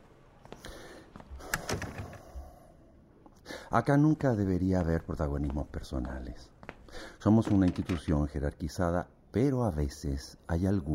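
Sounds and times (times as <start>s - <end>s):
speech: 3.7s - 6.6s, 7.2s - 10.9s
door rattle: 7.3s - 8.2s.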